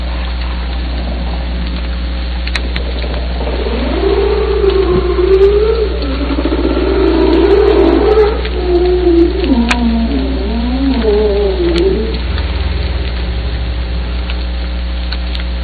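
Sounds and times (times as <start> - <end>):
humpback whale rising and falling trill: 0.0 - 15.5.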